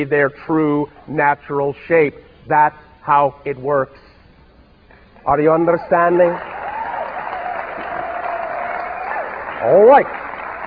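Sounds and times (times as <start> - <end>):
speech: 0.0 - 4.1, 5.2 - 6.5, 9.6 - 10.2
audience applauding: 5.9 - 10.6.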